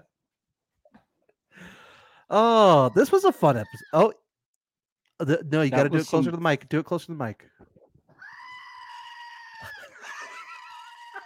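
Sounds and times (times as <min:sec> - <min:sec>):
speech: 0:02.3 - 0:04.2, 0:05.2 - 0:07.6
laughter: 0:02.4 - 0:04.1, 0:05.3 - 0:06.4, 0:09.6 - 0:11.2
screaming goat toy figurine squeal: 0:02.5 - 0:04.1, 0:08.2 - 0:11.2.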